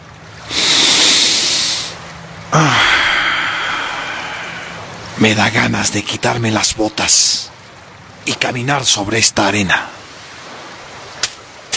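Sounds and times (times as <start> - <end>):
gentle wave washing up on the shore: 0.0 - 11.7
speech: 5.2 - 7.5, 8.2 - 10.0.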